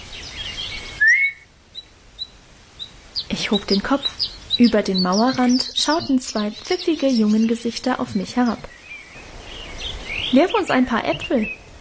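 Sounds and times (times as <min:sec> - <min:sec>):
short sharp whistle on garden paths: 0:01.0 - 0:01.4
speech: 0:03.4 - 0:08.8, 0:10.3 - 0:11.6.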